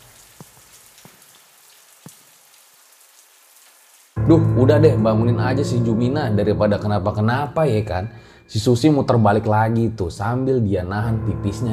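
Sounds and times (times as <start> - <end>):
water drips or splashes: 0.0 - 4.2
speech: 4.3 - 11.7.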